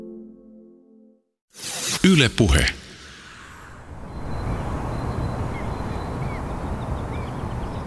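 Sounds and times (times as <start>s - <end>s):
speech: 2.1s - 2.8s
birds calling and chirping in a small forest: 3.4s - 7.8s.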